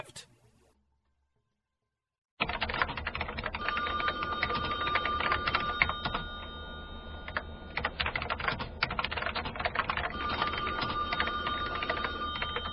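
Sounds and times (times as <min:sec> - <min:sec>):
rapid keyboard typing: 0:02.4 - 0:06.5, 0:07.2 - 0:12.7
telephone ringing with an electronic trill: 0:03.6 - 0:08.0, 0:10.1 - 0:12.7.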